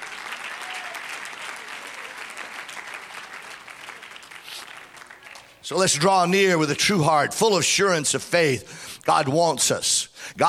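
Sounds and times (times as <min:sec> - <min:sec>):
audience clapping hands: 0:00.0 - 0:05.6
speech: 0:05.7 - 0:10.4.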